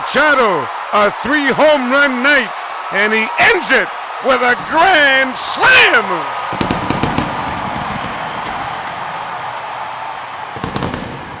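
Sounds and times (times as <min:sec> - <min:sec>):
speech: 0:00.1 - 0:06.8
fireworks crackling and popping at a ballpark: 0:06.5 - 0:09.4, 0:10.5 - 0:11.3.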